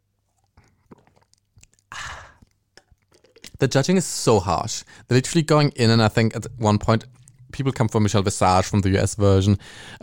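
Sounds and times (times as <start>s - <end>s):
small wet mouth clicks: 0.4s - 3.6s
person slurping a sip of wine: 0.5s - 3.6s
speech: 3.6s - 10.0s.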